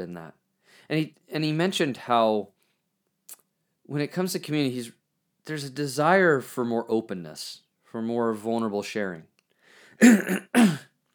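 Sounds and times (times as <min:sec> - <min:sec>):
speech: 0:00.0 - 0:02.6, 0:03.3 - 0:09.3, 0:10.0 - 0:10.9
person clearing throat: 0:10.0 - 0:10.8.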